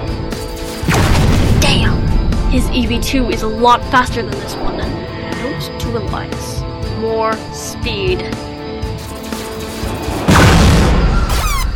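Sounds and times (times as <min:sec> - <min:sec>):
dense roaring background: 0:00.0 - 0:11.7
heavy blast of gunfire shooting off a combat plane's right wing: 0:00.8 - 0:03.2, 0:10.1 - 0:11.7
speech: 0:02.5 - 0:08.5.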